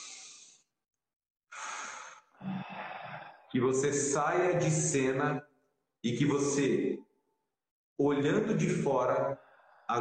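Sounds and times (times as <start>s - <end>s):
breathy exhale with a faint voiced edge: 0.0s - 0.7s, 1.5s - 3.5s
deep inhale: 0.0s - 0.7s, 1.5s - 3.5s, 9.4s - 9.9s
speech: 3.5s - 7.0s, 8.0s - 9.9s.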